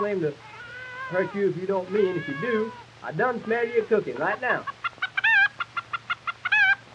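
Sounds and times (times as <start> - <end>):
speech: 0.0 - 4.8
hen clucking: 0.3 - 6.8.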